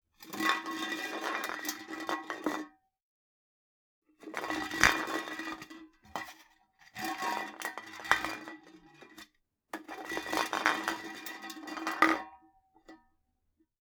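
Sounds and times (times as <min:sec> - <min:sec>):
drinks can crushing and rolling: 0:00.2 - 0:02.7, 0:04.2 - 0:06.4, 0:07.0 - 0:09.2, 0:09.8 - 0:12.4.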